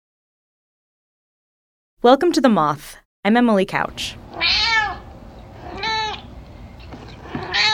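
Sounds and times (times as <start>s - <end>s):
speech: 2.0s - 4.6s
domestic cat meowing: 4.3s - 6.3s, 7.2s - 7.7s.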